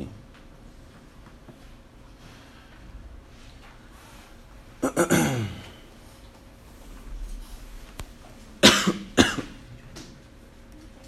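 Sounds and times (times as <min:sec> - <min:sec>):
harsh coughs: 0:04.8 - 0:05.8, 0:08.6 - 0:09.7.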